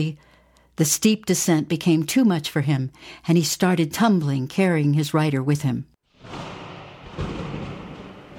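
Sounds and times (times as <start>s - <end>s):
speech: 0.0s - 6.5s
thunder rumbling: 6.2s - 8.3s.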